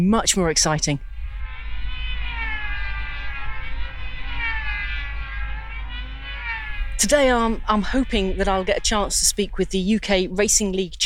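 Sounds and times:
speech: 0.0 - 1.1, 7.0 - 11.0
large model jet aircraft engine roaring: 1.1 - 9.2.

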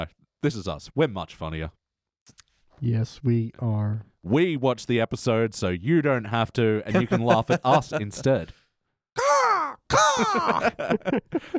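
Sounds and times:
speech: 0.0 - 8.6, 10.0 - 11.5
laughter: 6.9 - 8.4, 9.2 - 11.5
person imitating seagull calls with their voice: 9.2 - 10.7.

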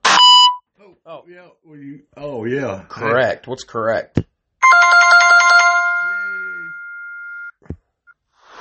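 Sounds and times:
loud harsh electronic beep: 0.0 - 0.6, 4.6 - 7.6
speech: 1.0 - 5.2.

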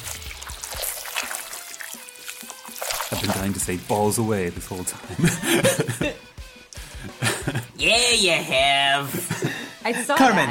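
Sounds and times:
liquid pouring in a steady gush with gurgles: 0.0 - 4.2
speech: 3.2 - 6.2, 7.8 - 10.4
laughter: 5.0 - 6.3, 7.0 - 7.8, 9.0 - 10.4.

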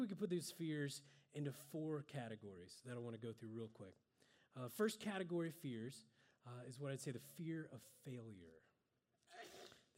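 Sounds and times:
speech: 0.0 - 8.7, 9.3 - 9.9
sneeze: 9.3 - 9.9.

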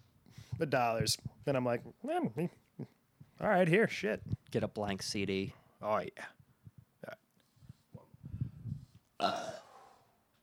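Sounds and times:
speech: 0.6 - 6.4, 9.2 - 9.6
throaty gulps and croaks: 7.9 - 9.7
person burping: 9.2 - 9.8.

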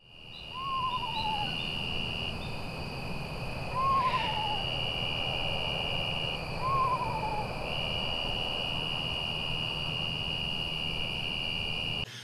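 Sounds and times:
low rumble: 0.0 - 12.0
night insects droning: 0.0 - 12.2
eastern screech owl whinny-like calls: 0.3 - 2.6, 3.7 - 5.6, 6.6 - 7.6.

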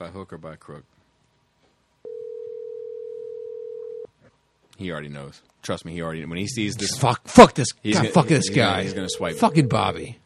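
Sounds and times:
speech: 0.0 - 1.0, 4.8 - 10.2
low hiss: 0.0 - 10.2
ringback tone of an outgoing telephone call: 2.1 - 4.1, 8.0 - 10.0.

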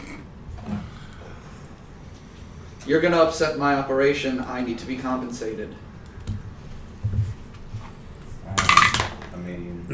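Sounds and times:
speech: 2.9 - 5.9
dice tumbling across a hard tabletop: 8.6 - 9.3.

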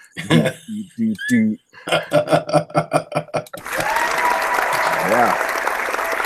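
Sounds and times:
person chanting short rhythmic syllables: 0.0 - 3.6
laughter: 0.0 - 5.5
speech: 0.2 - 2.8
hand-clapping sound effect of crowd applause: 3.6 - 6.2.

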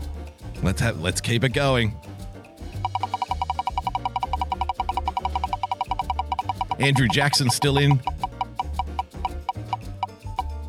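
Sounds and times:
speech: 0.6 - 2.1, 6.8 - 8.1
spinning prize wheel ticking: 2.8 - 10.1.

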